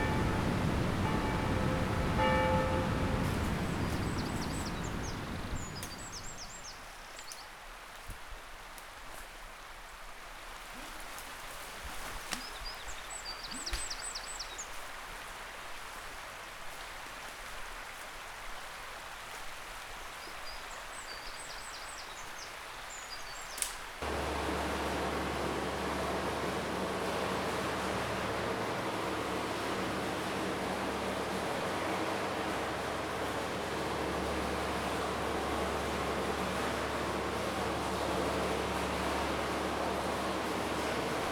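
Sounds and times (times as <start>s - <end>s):
vehicle rumbling away in the countryside near a lake: 0.0s - 6.6s, 24.0s - 41.3s
high bird calls in the countryside near a lake: 0.0s - 6.7s
steady rushing water-like noise near a lake: 0.0s - 10.7s, 13.8s - 41.3s.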